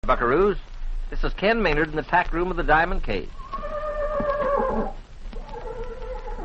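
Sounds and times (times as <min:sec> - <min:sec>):
speech: 0:00.0 - 0:03.4
rumble: 0:00.0 - 0:06.4
horse neighing: 0:03.4 - 0:06.4.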